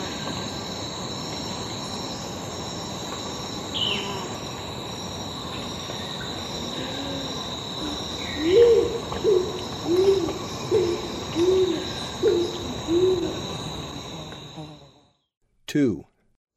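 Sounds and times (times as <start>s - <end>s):
steady high insect drone in Ecuador: 0.0s - 15.3s
scaled pigeon cooing in Ecuador: 6.7s - 13.5s
speech: 15.7s - 16.1s.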